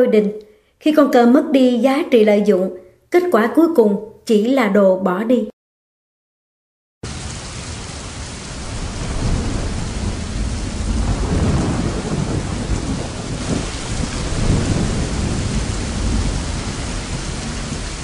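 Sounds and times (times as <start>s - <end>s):
speech: 0.0s - 5.5s
heavy rain in a night storm: 7.0s - 18.0s
thunder rumbling in a night storm: 7.0s - 18.0s
strong wind gusts in a night storm: 8.3s - 18.0s.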